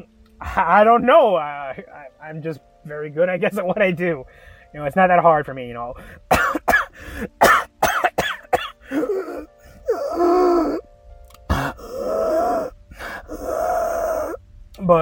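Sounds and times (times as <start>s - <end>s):
speech: 0.0s - 7.4s
asthmatic person wheezing: 4.2s - 4.7s, 6.9s - 7.4s, 8.8s - 10.8s, 11.5s - 14.4s
asthmatic person coughing: 6.3s - 9.4s, 11.5s - 12.0s
throaty groans: 8.8s - 10.9s, 11.5s - 14.4s.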